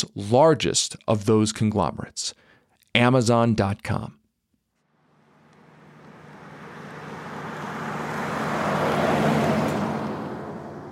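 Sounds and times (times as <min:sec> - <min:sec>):
speech: 0:00.1 - 0:04.2
delivery truck driving past on a street: 0:04.9 - 0:10.9.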